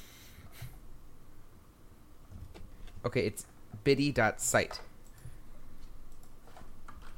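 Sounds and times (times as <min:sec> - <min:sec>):
low hum: 0:00.0 - 0:07.1
speech: 0:03.0 - 0:04.9
light keystrokes on a computer keyboard: 0:06.1 - 0:07.1.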